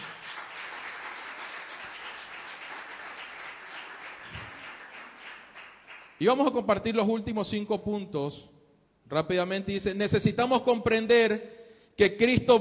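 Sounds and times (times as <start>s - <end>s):
audience applauding during a sermon: 0.0s - 6.2s
speech: 6.2s - 12.5s.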